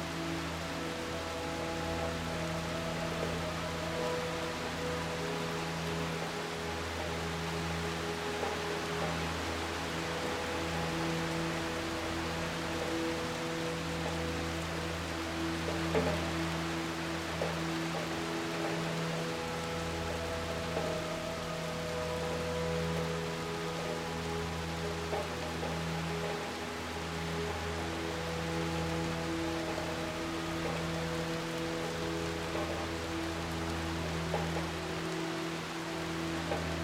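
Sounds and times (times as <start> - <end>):
soft ethereal ambient music: 0.0 - 36.8
steady rain: 0.0 - 36.8.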